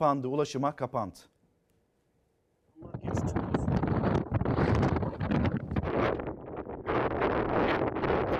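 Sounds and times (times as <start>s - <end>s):
speech: 0.0s - 1.3s
blizzard wind roaring across eastern Anatolia: 3.0s - 8.3s.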